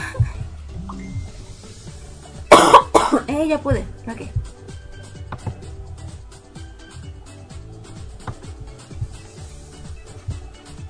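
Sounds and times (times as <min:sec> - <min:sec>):
person coughing: 0:02.5 - 0:03.3
speech: 0:03.4 - 0:04.5.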